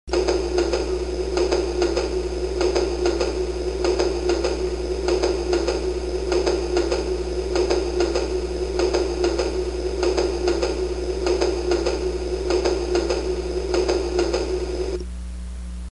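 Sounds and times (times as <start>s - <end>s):
clicking and clacking: 0.1s - 15.0s.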